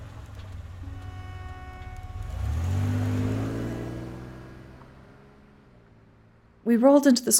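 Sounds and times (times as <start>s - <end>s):
car engine idling: 0.0s - 6.6s
speech: 6.7s - 7.3s.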